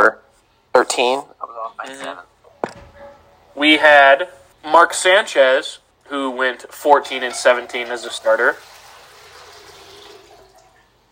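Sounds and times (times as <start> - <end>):
speech: 0.8 - 2.3, 3.6 - 8.8
tap water filling a pet's water bowl: 7.0 - 10.9.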